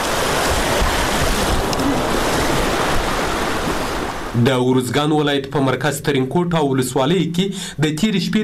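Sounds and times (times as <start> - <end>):
wind buffeting the microphone: 0.0 - 4.3
rushing floodwater after overnight rains in a village in Uruzgan province Afghanistan: 0.0 - 4.6
speech: 4.4 - 8.4.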